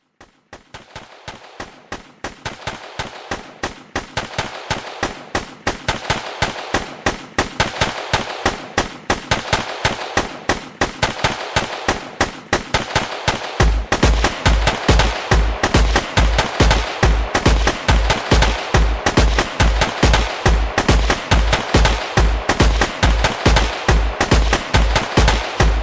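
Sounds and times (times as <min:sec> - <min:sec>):
gunshots: 0:00.2 - 0:25.8.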